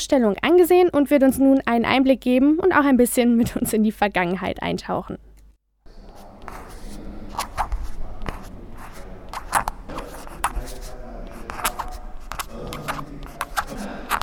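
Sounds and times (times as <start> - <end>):
speech: 0.0 - 5.3
quill pen scratching across paper: 6.0 - 14.2.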